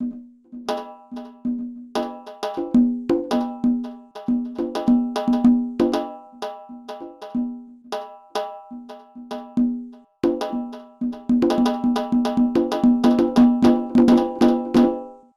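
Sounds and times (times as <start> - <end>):
synthesizer clip hit percussion: 0.0 - 15.2.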